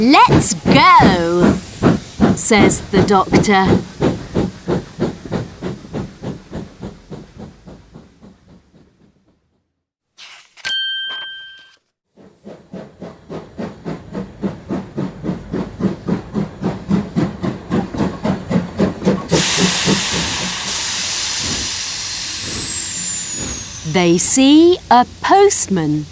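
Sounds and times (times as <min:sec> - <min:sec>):
speech: 0:00.0 - 0:01.6, 0:02.4 - 0:03.9, 0:24.0 - 0:26.1
steam train chuffing: 0:00.0 - 0:09.7, 0:12.2 - 0:26.1
bright bell-like ding: 0:10.6 - 0:11.8.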